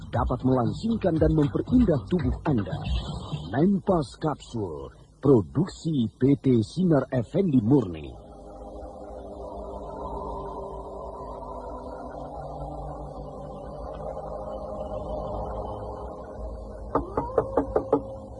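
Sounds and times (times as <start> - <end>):
low steady hum: 0.0 - 18.3
speech: 0.1 - 8.2
knocking on a home's door: 16.9 - 18.1.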